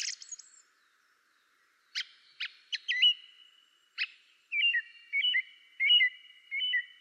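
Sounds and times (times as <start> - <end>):
song thrush singing: 0.0 - 7.0.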